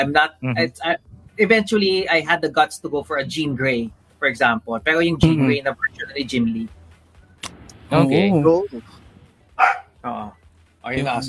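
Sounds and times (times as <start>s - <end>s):
speech: 0.0s - 6.8s, 7.9s - 9.0s, 9.6s - 11.2s
corgi barking: 9.6s - 10.0s.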